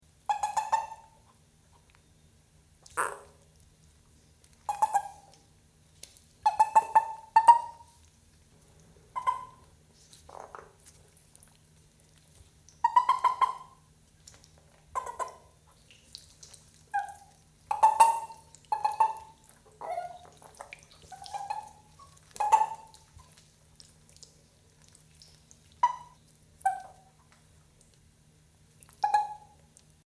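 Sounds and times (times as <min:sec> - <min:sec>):
Bufo gargarizans miyakonis calling: 0:04.7 - 0:05.3, 0:06.4 - 0:07.9, 0:09.2 - 0:09.6, 0:12.8 - 0:13.8, 0:15.0 - 0:15.5, 0:17.0 - 0:23.0, 0:25.8 - 0:27.1, 0:29.0 - 0:29.6.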